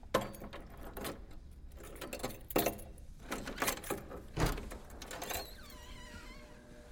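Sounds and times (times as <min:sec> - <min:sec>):
heavy bunch of large keys jangling: 0:00.2 - 0:04.1
faint squeaky tone: 0:05.2 - 0:06.6.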